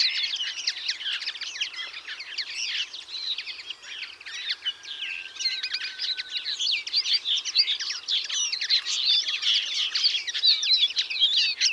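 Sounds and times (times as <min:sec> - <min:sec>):
European greenfinch chorus chirping and twittering: 0:00.0 - 0:11.7.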